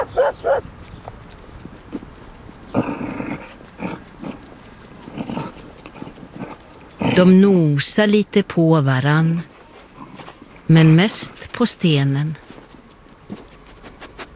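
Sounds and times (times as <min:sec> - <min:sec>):
dog barking and yipping: 0:00.0 - 0:00.6
speech: 0:00.3 - 0:00.8, 0:07.2 - 0:09.5, 0:10.7 - 0:12.4.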